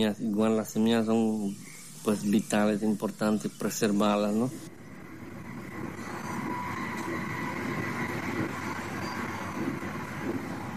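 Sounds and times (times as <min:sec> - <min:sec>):
speech: 0:00.0 - 0:04.7
train rolling along rails with rattling wagons: 0:04.2 - 0:10.7.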